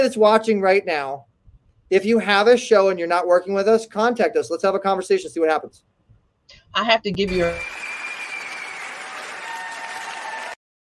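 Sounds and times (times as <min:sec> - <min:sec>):
speech: 0:00.0 - 0:01.3, 0:01.9 - 0:05.9, 0:06.5 - 0:07.9
dense applause from many clapping hands: 0:07.3 - 0:10.6.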